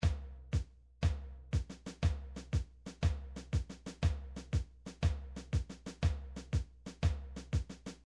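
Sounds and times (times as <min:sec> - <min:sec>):
MIDI drums playing a march: 0:01.6 - 0:08.0.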